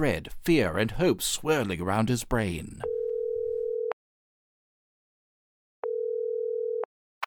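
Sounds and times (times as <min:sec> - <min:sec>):
speech: 0:00.0 - 0:02.8
cell phone telephone ringback tone after dialing: 0:02.8 - 0:04.0, 0:05.8 - 0:06.9.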